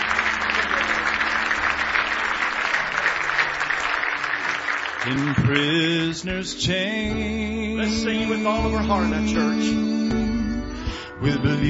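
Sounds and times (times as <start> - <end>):
congregation applause and hand clapping in a church service: 0.0 - 6.3
speech: 5.0 - 9.9, 11.2 - 11.6.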